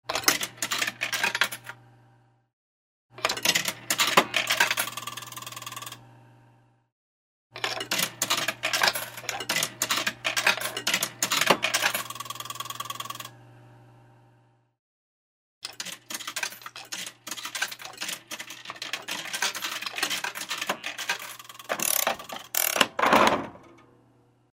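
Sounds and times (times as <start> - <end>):
coins thrown into a vending machine: 0.1 - 1.8, 3.2 - 6.0, 7.6 - 13.3, 15.6 - 23.8.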